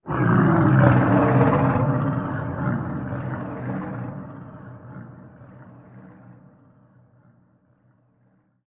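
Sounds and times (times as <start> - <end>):
creature: 0.0 - 5.3.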